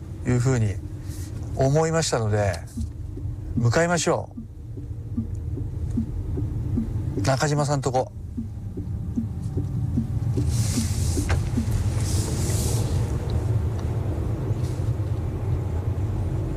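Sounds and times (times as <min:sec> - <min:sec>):
car driving on a highland road: 0:00.0 - 0:16.5
speech: 0:00.2 - 0:00.9, 0:01.6 - 0:02.9, 0:03.6 - 0:04.4, 0:07.2 - 0:08.2
faint hiss of tires on a wet surface: 0:10.4 - 0:15.1.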